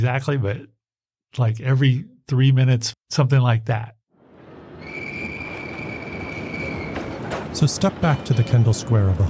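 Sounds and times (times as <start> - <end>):
speech: 0.0 - 4.0, 7.6 - 9.2
subway train rumbling along the rails: 4.2 - 9.2
high metallic squeal of subway train wheels: 4.8 - 9.1.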